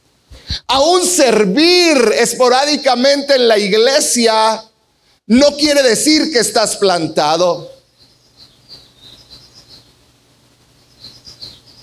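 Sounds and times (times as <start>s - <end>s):
faint low hum: 0.0s - 11.8s
speech: 0.7s - 4.7s, 5.3s - 7.8s
small bird chirping in high-pitched bursts: 7.6s - 11.8s.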